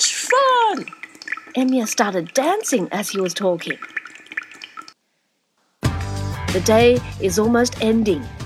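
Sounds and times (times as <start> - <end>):
irregular patter of water drops: 0.0 - 5.0
speech: 1.6 - 4.0, 6.6 - 8.4.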